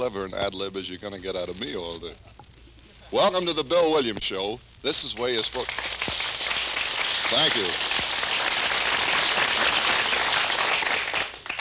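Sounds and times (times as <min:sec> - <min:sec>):
speech: 0:00.0 - 0:02.4, 0:03.1 - 0:06.0, 0:07.3 - 0:08.1
large studio audience applause: 0:05.5 - 0:11.6.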